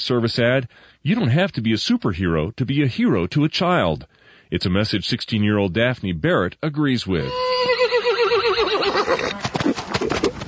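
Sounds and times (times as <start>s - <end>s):
speech: 0.0s - 7.7s, 9.1s - 9.8s
horse hoof clops on a ranch: 7.2s - 10.4s
horse on a ranch whinnying with a wavering pitch: 7.2s - 10.4s
horse on a ranch snorting: 8.0s - 10.4s.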